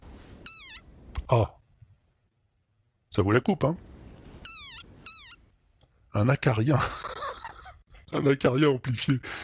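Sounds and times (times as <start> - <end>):
adult desert rain frog cry: 0.4 - 0.8, 4.4 - 5.4
speech: 1.3 - 1.6, 3.2 - 3.9, 6.2 - 7.1, 8.1 - 9.4
laughter: 6.8 - 7.8.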